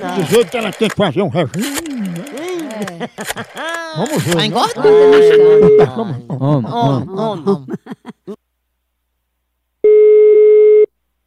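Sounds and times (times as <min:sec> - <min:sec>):
speech: 0:00.0 - 0:01.8, 0:02.8 - 0:08.0
laughter: 0:00.0 - 0:08.4
telephone ringback tone during a prank call: 0:04.8 - 0:05.9, 0:09.8 - 0:10.9.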